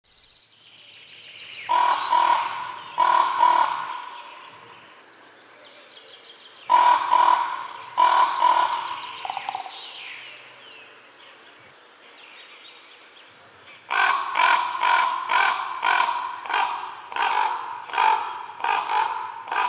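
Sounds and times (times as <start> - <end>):
raven calling: 1.7 - 4.9, 6.7 - 10.5, 13.7 - 19.6.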